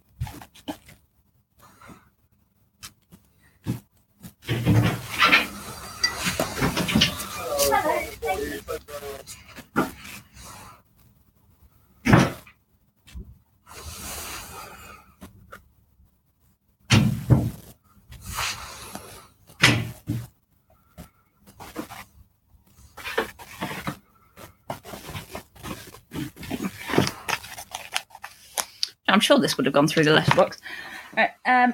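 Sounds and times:
rustling and scraping handling noise: 0:00.0 - 0:02.1, 0:02.8 - 0:15.7, 0:16.3 - 0:28.9
knocks and thuds of a door being opened and shut: 0:16.9 - 0:17.6
speech: 0:29.2 - 0:31.7.

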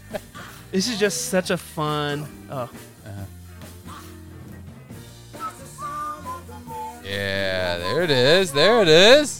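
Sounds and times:
steady musical backing with a deep bass line: 0:00.0 - 0:09.3
speech: 0:00.7 - 0:03.4, 0:07.1 - 0:09.3
person whistling a melody: 0:05.3 - 0:08.0.

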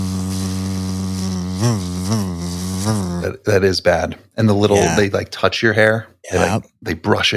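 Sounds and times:
person humming a droning buzz imitating a deer fly: 0:00.0 - 0:03.3, 0:04.7 - 0:05.0
speech: 0:01.6 - 0:07.3.

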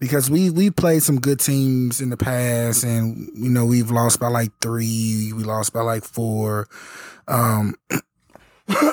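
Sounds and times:
speech: 0:00.0 - 0:08.1, 0:08.7 - 0:08.9
hoarse person clearing throat: 0:07.7 - 0:08.1.

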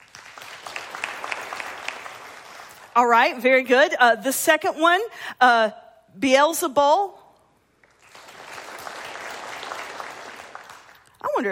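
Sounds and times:
audience clapping: 0:00.0 - 0:03.0, 0:07.8 - 0:11.3
speech: 0:03.0 - 0:07.2.

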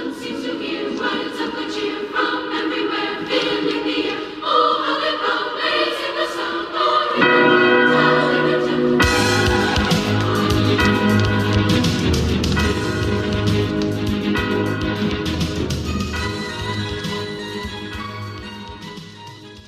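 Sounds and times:
orchestral Christmas carol: 0:00.0 - 0:19.6
ringing bells in an orchestral Christmas carol: 0:07.0 - 0:19.4.

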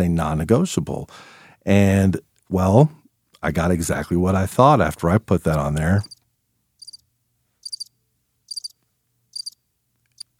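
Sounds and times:
speech: 0:00.0 - 0:06.1
crickets chirping: 0:06.8 - 0:07.0, 0:07.6 - 0:07.9, 0:08.5 - 0:08.8, 0:09.4 - 0:09.6.

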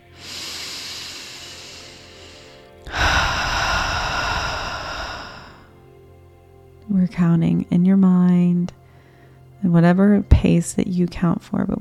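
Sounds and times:
slow deep breathing in and out: 0:00.0 - 0:05.9, 0:08.8 - 0:09.5
speech: 0:07.0 - 0:08.8, 0:09.6 - 0:11.8.

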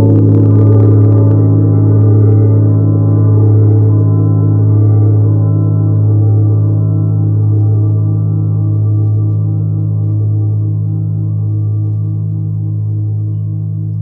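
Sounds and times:
large gong ringing with deep sustain: 0:00.0 - 0:14.0.

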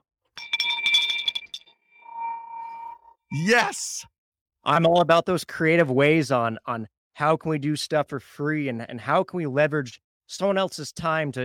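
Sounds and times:
handheld victory bell ringing: 0:00.4 - 0:03.1
speech: 0:03.3 - 0:11.4.

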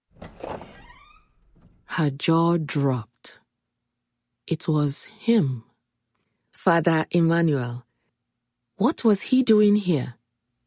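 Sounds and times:
front door creaking slowly open: 0:00.0 - 0:01.9
speech: 0:02.0 - 0:03.1, 0:04.5 - 0:05.7, 0:06.6 - 0:07.8, 0:08.8 - 0:10.2.

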